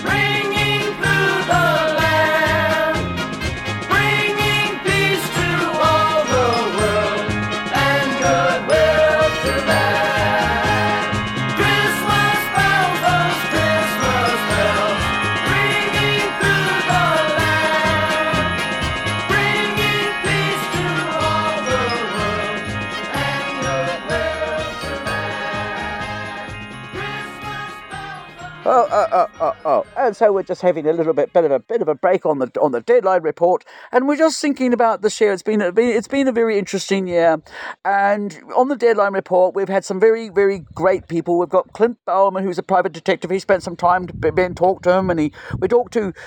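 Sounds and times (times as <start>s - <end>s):
upbeat festive song with bouncy bass beat and bright melody: 0.0s - 39.1s
Christmas bells jingling: 4.9s - 31.1s
speech: 30.1s - 46.2s.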